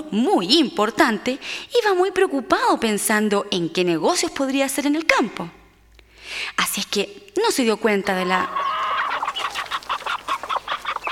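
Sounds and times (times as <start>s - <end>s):
speech: 0.1s - 5.6s, 6.6s - 8.6s
hen clucking: 8.0s - 11.1s
chicks chirping: 8.1s - 11.1s.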